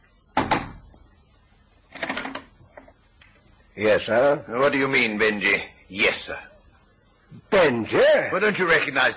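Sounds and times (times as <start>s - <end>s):
sharp loud knocks on a door: 0.4s - 0.8s
speech: 3.8s - 6.5s, 7.5s - 9.1s.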